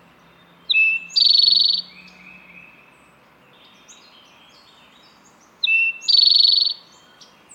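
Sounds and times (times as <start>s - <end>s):
Eastern Towhee song with flourished ending: 0.0s - 7.5s
faint bird chattering: 0.7s - 2.0s, 5.6s - 7.3s.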